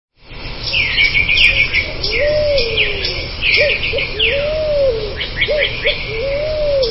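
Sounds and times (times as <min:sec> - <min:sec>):
other birds giving busy higher chirps: 0:00.3 - 0:06.8
dove giving low rounded coos: 0:01.4 - 0:06.8.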